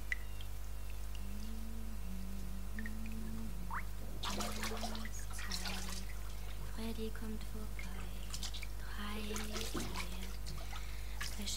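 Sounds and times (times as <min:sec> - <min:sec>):
hot foamy bath water dripping and trickling in a bathtub: 0:00.0 - 0:01.3, 0:02.7 - 0:11.5
low steady hum: 0:00.0 - 0:11.5
quiet held tone: 0:00.0 - 0:11.5
hot foamy bath water splashing in a bathtub: 0:02.7 - 0:07.0, 0:07.8 - 0:11.5
speech: 0:06.8 - 0:07.9, 0:09.0 - 0:10.2, 0:11.4 - 0:11.5.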